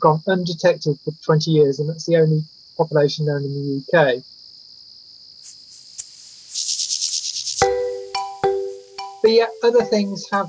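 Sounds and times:
speech: 0.0s - 4.3s, 9.3s - 10.4s
mole cricket churring: 0.0s - 10.4s
mole cricket rapid pulsed chirps: 5.4s - 10.4s.

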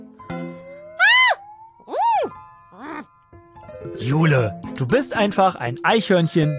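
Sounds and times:
human voice imitating a brown bear screaming and snorting: 1.0s - 3.0s
speech: 3.9s - 6.5s.

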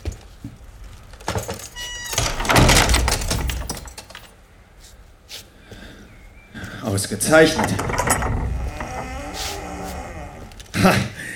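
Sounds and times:
door swinging shut with creaking, metallic rattle and heavy thud: 1.4s - 4.1s, 7.2s - 11.0s
speech: 7.0s - 8.2s, 10.8s - 11.1s.

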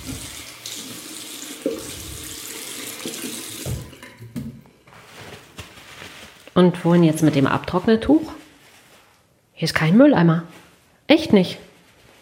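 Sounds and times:
running tap water while hands are washed at a sink in a toilet: 0.0s - 4.1s
speech: 6.6s - 8.4s, 9.6s - 10.5s, 11.1s - 11.6s.

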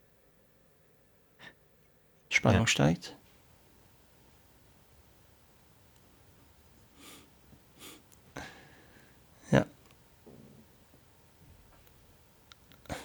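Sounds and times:
speech: 2.4s - 3.2s
man breathing heavily: 6.9s - 9.5s
man's sharp snorting breath: 7.0s - 9.2s.

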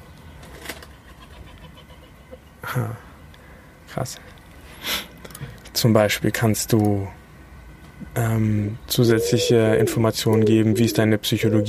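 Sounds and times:
steady hum: 0.0s - 11.6s
speech: 2.7s - 3.0s, 3.9s - 4.4s, 5.8s - 7.2s, 8.2s - 11.6s
pigeons cooing: 9.0s - 11.6s.

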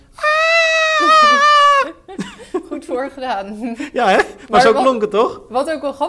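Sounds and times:
person imitating a high-pitched panicked shriek: 0.1s - 2.1s
laughter: 0.8s - 2.9s
speech: 2.9s - 6.0s.

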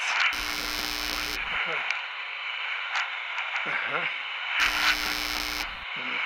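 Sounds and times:
hissy crackly radio broadcast: 0.0s - 6.2s
voices from a radio: 0.0s - 6.2s
harsh buzzing radio interference: 0.2s - 1.6s, 4.6s - 6.0s.

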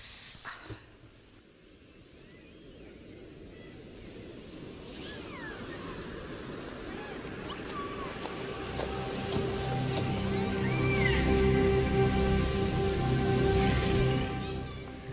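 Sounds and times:
sea waves washing and roaring: 3.8s - 15.1s
eerie wordless singing voice of the mythical sirens: 7.2s - 15.1s.

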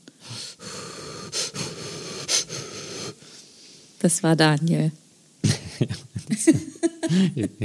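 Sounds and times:
wheezy breathing on the microphone: 0.1s - 4.0s
speech: 4.0s - 5.0s, 5.8s - 7.6s
laughter: 5.4s - 7.6s.

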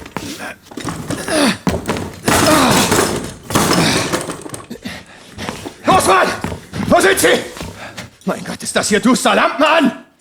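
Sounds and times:
door being forced open with heavy thuds and splintering: 0.0s - 8.2s
speech: 0.2s - 2.0s, 6.0s - 7.5s, 8.3s - 10.0s.

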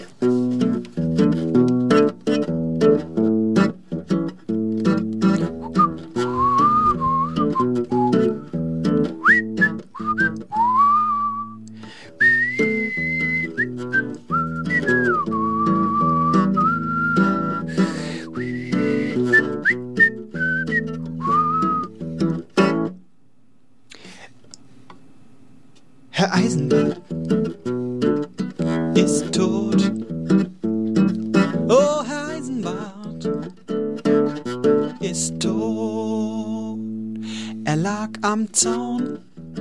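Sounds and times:
full instrumental backing music: 0.0s - 23.1s, 26.3s - 39.5s
person whistling a song melody: 5.4s - 8.5s, 9.2s - 22.0s.

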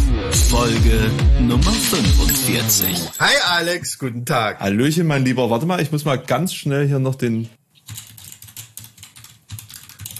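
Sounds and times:
speech: 0.6s - 7.6s
rapid typing on a mechanical keyboard: 7.8s - 10.1s.

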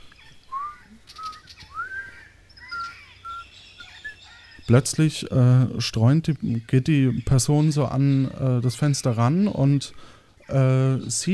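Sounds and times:
faint steady hum: 0.0s - 11.3s
short thin whistled notes from the cellar of a palace: 0.5s - 2.1s
speech: 4.7s - 11.3s.

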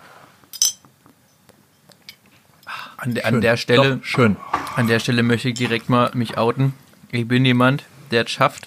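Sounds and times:
speech: 3.0s - 8.6s
beer bottles clinking in a toast: 3.7s - 6.5s.

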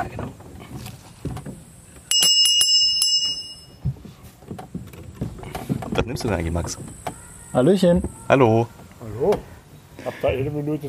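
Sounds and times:
bright bell ringing: 2.1s - 3.8s
speech: 6.1s - 10.8s.

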